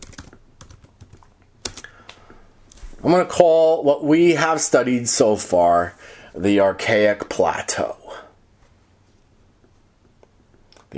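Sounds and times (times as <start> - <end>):
typing on a computer keyboard into a chat box: 0.0 - 1.9
speech: 3.0 - 8.2.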